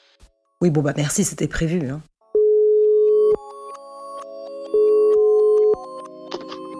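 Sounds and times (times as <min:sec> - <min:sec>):
speech: 0:00.6 - 0:02.1
telephone ringback tone: 0:02.4 - 0:03.7, 0:04.6 - 0:06.1
soft melodic music: 0:03.3 - 0:06.7.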